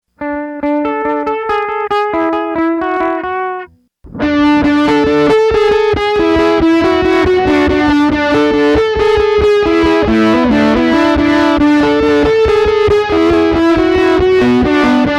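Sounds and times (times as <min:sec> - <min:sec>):
B Muff and Memory Man effects pedal processed sound: 0:00.1 - 0:15.1.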